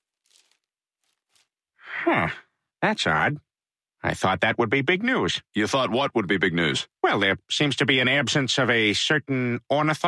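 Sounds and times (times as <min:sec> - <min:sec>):
sheet of paper rustling and crinkling as it is handled: 0:00.0 - 0:01.6
speech: 0:02.0 - 0:10.0.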